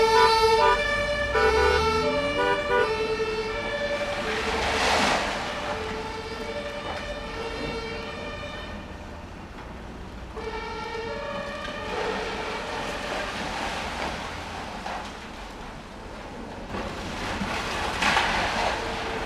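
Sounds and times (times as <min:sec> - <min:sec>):
siren of a passing ambulance: 0:00.0 - 0:13.6
building demolition in Berlin: 0:00.0 - 0:19.2.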